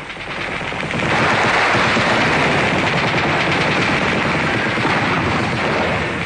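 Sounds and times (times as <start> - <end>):
dense roaring wash: 0.0 - 6.2
machine gun fire from an aircraft: 0.0 - 6.2.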